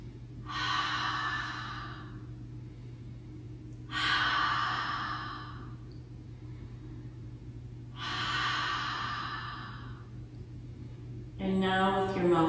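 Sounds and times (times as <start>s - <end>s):
low steady hum: 0.0s - 12.4s
breathy open-mouth ujjayi exhales as a breathing exercise: 0.5s - 3.1s, 3.9s - 5.8s, 8.0s - 10.1s.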